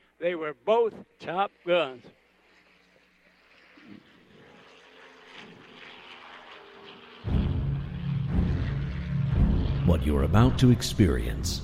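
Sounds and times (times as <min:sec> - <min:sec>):
jets and World War II piston-powered propeller aircraft flying by: 0:00.0 - 0:11.6
speech: 0:00.2 - 0:02.2, 0:09.9 - 0:11.6.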